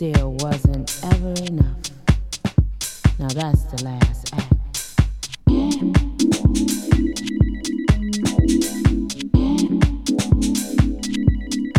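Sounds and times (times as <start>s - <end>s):
speech: 0.0s - 1.9s, 3.2s - 4.6s
phone ringing with an electronic ringtone of synthesized melody over thumping beat: 5.8s - 11.7s.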